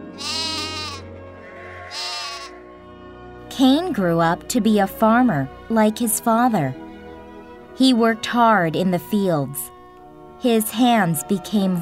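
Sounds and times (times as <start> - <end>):
sheep bleating: 0.0 - 2.6
speech: 3.6 - 6.8, 7.8 - 9.7, 10.4 - 11.8.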